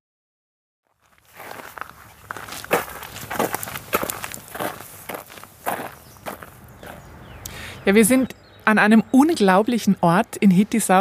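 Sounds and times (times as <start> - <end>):
footsteps crunching on forest ground near Hittisau in the Nagelfluhkette nature park: 0.8 - 7.4
speech: 7.9 - 11.0.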